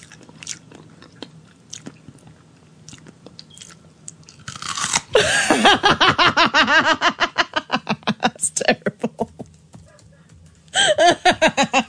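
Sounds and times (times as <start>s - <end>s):
loud crunchy chewing and biting: 0.0s - 5.2s
laughter: 5.2s - 9.5s, 10.8s - 11.8s.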